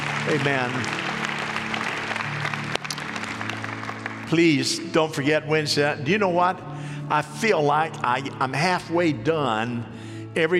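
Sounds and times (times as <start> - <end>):
church audience clapping: 0.0 - 5.0
speech: 0.3 - 1.0, 4.3 - 10.5.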